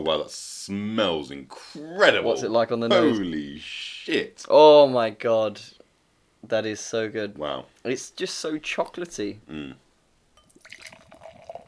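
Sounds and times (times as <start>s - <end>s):
speech: 0.0s - 5.8s, 6.4s - 9.8s
drink pouring into a glass: 10.4s - 11.6s.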